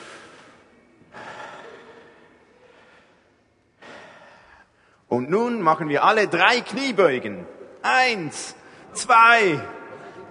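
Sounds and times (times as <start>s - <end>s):
group of people breathing deeply in and out for a warm-up: 0.0s - 5.1s
speech: 5.1s - 9.8s.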